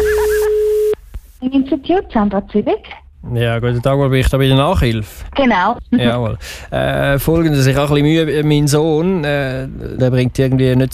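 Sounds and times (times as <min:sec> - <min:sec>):
telephone line signal steady high tone: 0:00.0 - 0:01.0
speech: 0:01.9 - 0:10.9.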